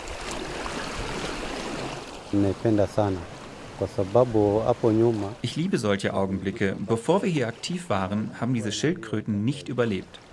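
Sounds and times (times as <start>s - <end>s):
ocean waves washing onto sandy beach: 0.0s - 8.1s
speech: 2.3s - 10.3s.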